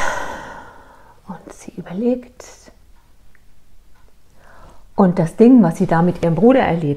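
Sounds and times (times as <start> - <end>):
woman taking a deep breath and exhaling: 0.0 - 1.1
speech: 1.8 - 2.6, 5.0 - 6.9.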